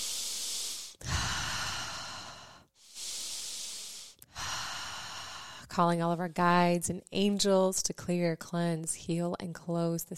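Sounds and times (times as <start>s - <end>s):
deep cleansing breath: 0.0s - 5.7s
speech: 5.8s - 10.1s.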